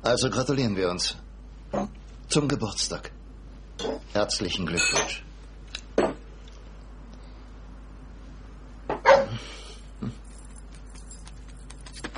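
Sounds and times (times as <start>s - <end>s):
speech: 0.0s - 3.2s, 3.8s - 5.2s
dog yelping barks with whimpering: 9.0s - 9.3s.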